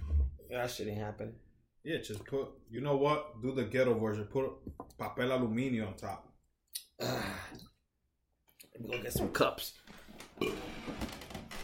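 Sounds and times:
speech: 0.5s - 6.3s, 7.0s - 7.7s, 8.8s - 11.1s
loud guttural burp: 10.4s - 10.9s.

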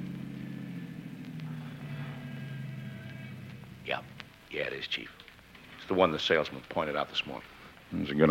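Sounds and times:
car engine humming: 0.0s - 5.6s
speech: 3.9s - 5.2s, 5.9s - 8.2s.

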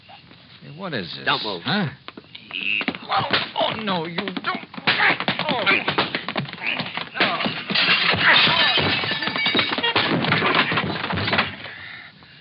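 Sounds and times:
speech: 0.7s - 4.6s, 5.5s - 7.5s
blows landing on a man in a staged fistfight: 2.6s - 11.7s.

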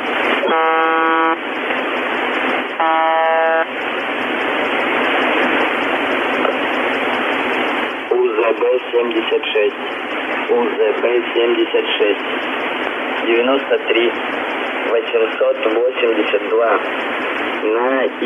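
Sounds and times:
heavy radio static: 0.0s - 18.2s
harsh buzzer tone from a constantly keyed microphone: 0.4s - 1.4s, 2.8s - 3.7s
voice over radio: 8.1s - 12.4s, 13.2s - 14.2s, 14.8s - 16.9s, 17.6s - 18.2s.

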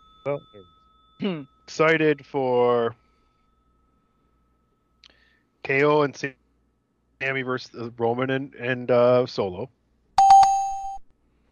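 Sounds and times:
bell struck with a bright metallic ring: 0.0s - 6.1s, 10.2s - 11.0s
speech: 0.2s - 3.0s, 5.6s - 6.4s, 7.2s - 9.8s.

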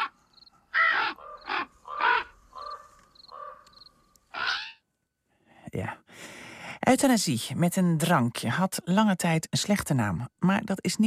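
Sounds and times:
crow cawing with harsh raspy calls: 0.0s - 4.8s
fainter chirps from other birds: 0.0s - 4.8s
speech: 5.7s - 6.0s, 6.9s - 11.0s.

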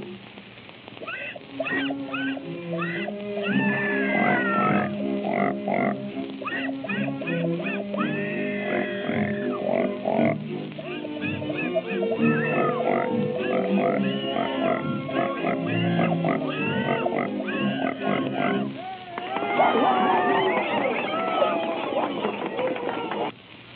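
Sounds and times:
two pigs squealing and grunting in a tune: 1.0s - 18.8s
laughter: 6.4s - 23.4s.

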